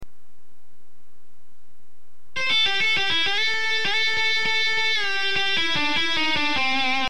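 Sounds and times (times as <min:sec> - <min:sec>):
guitar playing a blues minor pentatonic exercise: 0:02.3 - 0:07.0.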